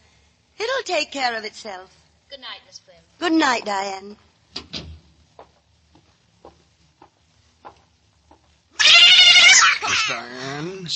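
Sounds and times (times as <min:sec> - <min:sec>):
speech: 0:00.8 - 0:04.7, 0:09.8 - 0:10.9
faint scattered taps: 0:04.5 - 0:08.6
cat meowing: 0:08.8 - 0:10.2.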